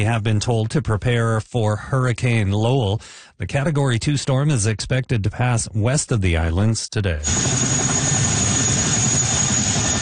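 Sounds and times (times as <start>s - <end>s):
speech: 0.0s - 7.9s
National Guard helicopter delivering troops and supplies to Hawaii ahead of a hurricane: 7.2s - 9.9s.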